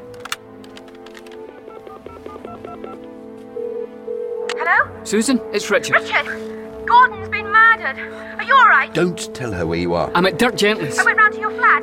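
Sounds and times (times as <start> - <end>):
touch-tone beeps of a phone number being dialed: 1.5 - 3.0
speech: 5.0 - 11.8.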